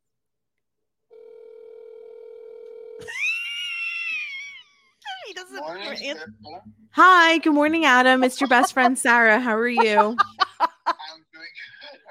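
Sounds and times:
outgoing phone call ringback tone: 1.1 - 3.0
laughter: 3.0 - 4.8, 8.0 - 12.0
speech: 5.5 - 10.6.

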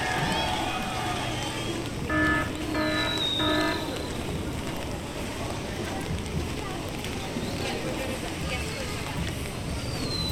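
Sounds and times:
steady crowd chatter in a busy theme park: 0.0 - 10.3
faint high whistles: 2.8 - 4.4, 9.7 - 10.3.

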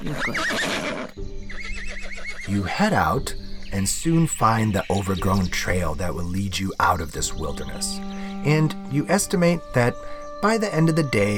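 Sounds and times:
horse whinnying with wavering high-pitched neigh: 0.0 - 2.8
speech: 0.1 - 0.6, 2.5 - 11.3.

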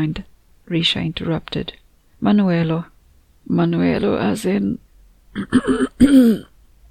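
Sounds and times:
speech: 0.0 - 6.5
person clearing throat: 5.4 - 6.6.

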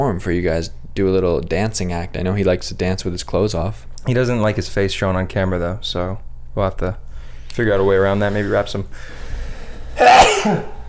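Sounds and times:
speech: 0.0 - 7.0, 7.6 - 9.2, 10.0 - 10.8
person sneezing: 10.0 - 10.8.

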